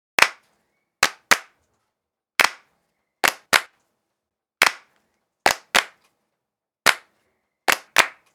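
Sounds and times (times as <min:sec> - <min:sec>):
solo hand claps: 0:00.2 - 0:00.4, 0:01.0 - 0:01.6, 0:02.4 - 0:03.8, 0:04.6 - 0:04.9, 0:05.5 - 0:06.0, 0:06.9 - 0:07.1, 0:07.7 - 0:08.3.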